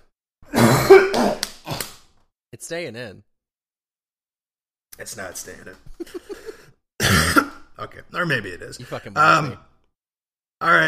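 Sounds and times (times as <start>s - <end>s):
person coughing after choking on wine: 0.4s - 1.9s, 7.0s - 7.7s
speech: 2.5s - 3.3s, 5.0s - 6.3s, 7.8s - 9.7s, 10.6s - 10.8s.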